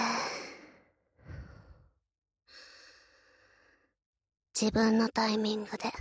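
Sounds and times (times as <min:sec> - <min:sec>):
person breathing in and out during a guided breathing exercise: 0:00.0 - 0:04.0
speech: 0:04.6 - 0:05.9.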